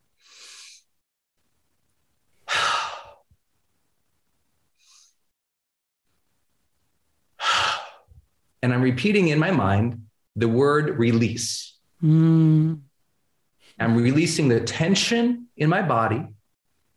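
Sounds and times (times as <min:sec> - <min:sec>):
slow deep breaths drawn and released: 0:00.2 - 0:00.9, 0:02.4 - 0:03.4, 0:07.4 - 0:08.2
speech: 0:08.6 - 0:12.9, 0:13.8 - 0:16.4.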